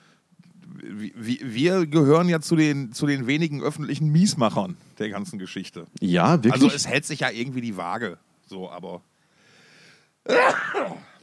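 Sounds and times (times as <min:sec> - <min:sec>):
speech: 0:01.1 - 0:09.1, 0:10.3 - 0:11.1
sneeze brought on by spring pollen: 0:10.3 - 0:11.2.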